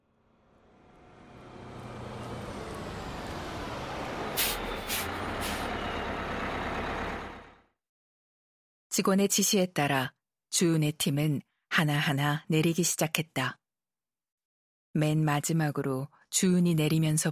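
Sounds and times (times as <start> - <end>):
heavy bus engine rumbling as the bus comes to a halt: 0.0 - 7.7
bus air brakes hissing: 4.3 - 6.0
speech: 9.0 - 13.6, 14.9 - 17.3.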